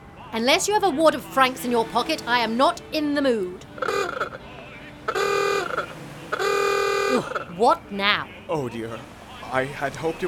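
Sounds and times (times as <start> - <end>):
low murmur: 0.0 - 10.2
speech: 0.3 - 4.4, 7.1 - 10.2
horn of a 4.5 liter Bentley coupe with a Wayman body honking: 3.6 - 7.9.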